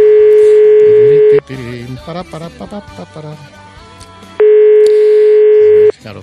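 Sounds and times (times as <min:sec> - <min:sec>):
ringback tone of a call to a mobile phone: 0:00.0 - 0:01.4, 0:04.4 - 0:05.9.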